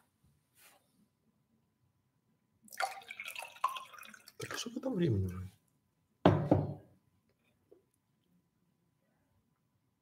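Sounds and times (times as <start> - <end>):
soft rustle: 0.0 - 1.1
person pouring water to drink: 2.7 - 5.5
speech: 4.6 - 5.6.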